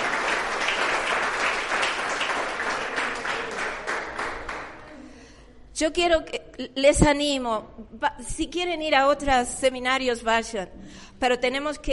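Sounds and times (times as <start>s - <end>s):
crowd of young people applauding: 0.0s - 4.8s
speech: 5.8s - 11.9s.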